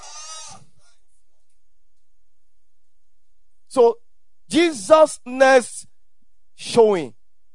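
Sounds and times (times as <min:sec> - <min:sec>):
sheep bleating: 0:00.0 - 0:00.7
speech: 0:03.7 - 0:05.9, 0:06.6 - 0:07.2.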